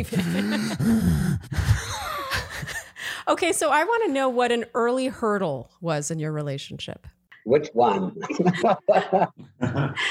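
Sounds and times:
laughter: 0:00.0 - 0:00.9, 0:07.8 - 0:10.0
speech: 0:00.0 - 0:01.9, 0:03.3 - 0:10.0
person breathing heavily with deep heaving breaths, gasps and groans: 0:00.2 - 0:03.3, 0:09.8 - 0:10.0.

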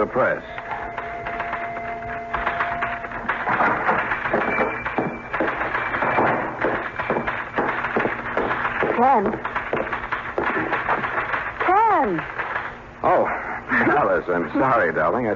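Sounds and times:
speech: 0:00.0 - 0:00.6, 0:09.0 - 0:09.5, 0:14.3 - 0:15.3
faint tonal hum: 0:00.0 - 0:15.3
typewriter typing: 0:00.6 - 0:12.8.

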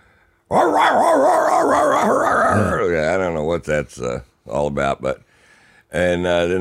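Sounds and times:
drug-sniffing dog on a plane barking and yowling: 0:00.5 - 0:02.8
speech: 0:00.5 - 0:05.3, 0:05.9 - 0:06.5.

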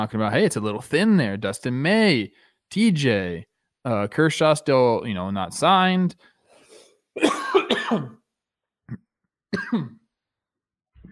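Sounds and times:
speech: 0:00.0 - 0:06.3, 0:07.2 - 0:08.2, 0:08.9 - 0:10.0
person coughing: 0:07.2 - 0:08.2, 0:09.6 - 0:10.0.

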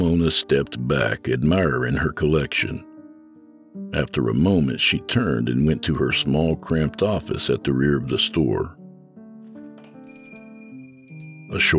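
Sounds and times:
speech: 0:00.0 - 0:02.9, 0:03.8 - 0:08.8, 0:11.5 - 0:11.7
small bell over a shop's front door ringing: 0:09.7 - 0:11.7.

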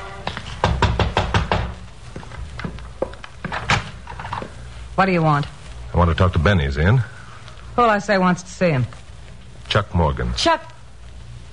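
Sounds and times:
knocking on the wooden back door of a frame house: 0:00.6 - 0:01.8
speech: 0:05.0 - 0:07.1, 0:07.8 - 0:09.0, 0:09.7 - 0:10.7.

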